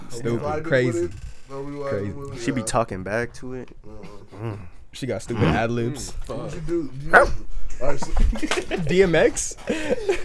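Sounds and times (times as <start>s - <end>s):
speech: 0.1s - 10.2s
person imitating a sharp loud dog bark: 7.1s - 7.4s
laughter: 7.1s - 10.2s.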